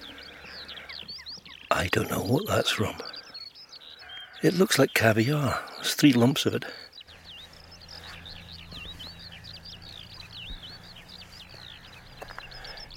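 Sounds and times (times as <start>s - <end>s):
Eurasian skylark singing by a countryside roadside: 0.0s - 12.9s
speech: 1.8s - 3.1s, 4.4s - 6.8s
low hum: 7.1s - 12.9s.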